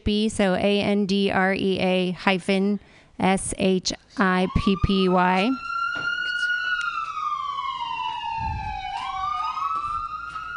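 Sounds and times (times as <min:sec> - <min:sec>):
speech: 0:00.0 - 0:05.7
ambulance siren wailing: 0:04.2 - 0:10.5.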